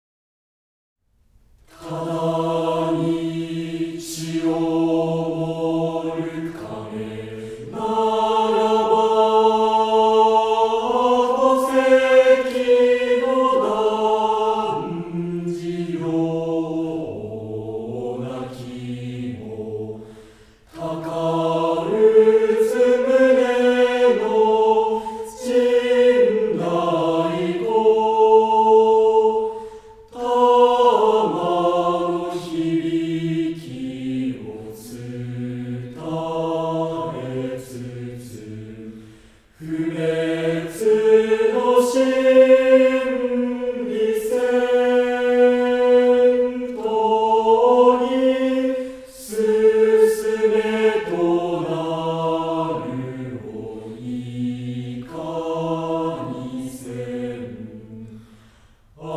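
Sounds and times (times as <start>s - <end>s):
mixed choir singing: 1.7s - 59.1s.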